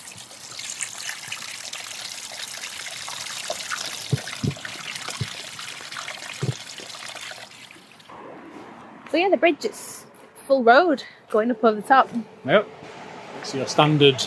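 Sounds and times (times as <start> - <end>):
small stream of overflow water trickling: 0.0 - 8.1
speech: 9.2 - 12.8, 13.4 - 14.2.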